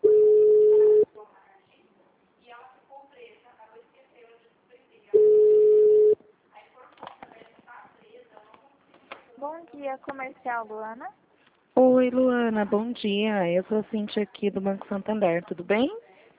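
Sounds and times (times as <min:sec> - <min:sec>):
telephone ringing tones while a call is transferred on a company's phone line: 0:00.0 - 0:01.1, 0:05.2 - 0:06.2
speech: 0:09.9 - 0:11.2, 0:11.8 - 0:16.0.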